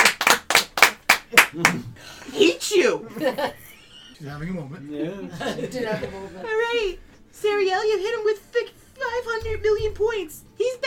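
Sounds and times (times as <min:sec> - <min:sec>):
people clapping hands: 0:00.0 - 0:01.9
speech: 0:01.5 - 0:10.8
laughter: 0:03.0 - 0:04.4, 0:05.0 - 0:06.7.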